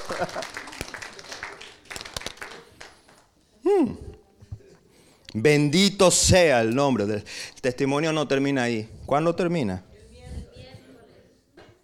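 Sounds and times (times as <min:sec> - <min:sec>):
laughter: 0:00.0 - 0:00.8
scattered clapping from a small audience: 0:00.0 - 0:03.3
speech: 0:00.1 - 0:00.6, 0:05.4 - 0:09.9.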